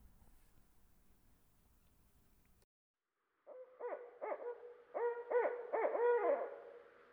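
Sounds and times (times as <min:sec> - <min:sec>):
barred owl hooting: 0:03.8 - 0:06.6.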